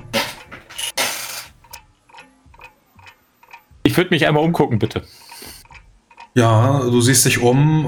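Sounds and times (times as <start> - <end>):
dishes clattering in a kitchen: 0.0 - 1.7
speech: 4.0 - 5.2, 6.4 - 7.8.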